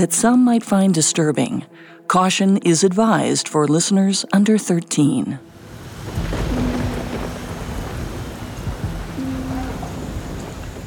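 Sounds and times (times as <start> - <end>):
speech: 0.0 - 6.8
steady dense rainfall: 5.5 - 10.8
deep rolling rumbles of thunder: 5.6 - 10.8.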